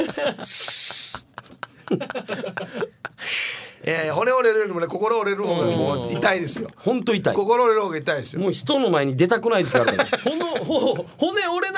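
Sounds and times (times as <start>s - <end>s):
people laughing: 0.0s - 3.2s, 9.6s - 11.1s
speech: 0.2s - 0.8s, 1.9s - 11.7s
voice imitating an aerosol cooling spray hiss: 0.4s - 1.3s.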